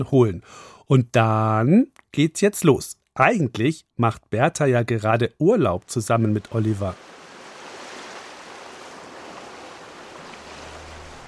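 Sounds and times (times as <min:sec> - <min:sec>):
speech: 0:00.0 - 0:07.2
sea waves washing against a shore: 0:05.9 - 0:11.2.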